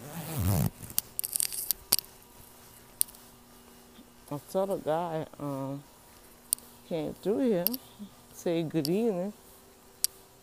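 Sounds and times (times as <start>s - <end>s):
zipper on clothing being pulled: 0.0s - 1.0s
speech: 4.3s - 5.9s, 6.9s - 9.4s.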